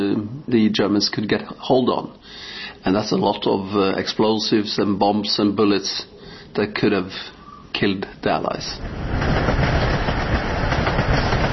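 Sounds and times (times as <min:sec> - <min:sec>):
speech: 0:00.0 - 0:09.2
electric train carrying sulfur from a mine rolling on rails: 0:08.4 - 0:11.5.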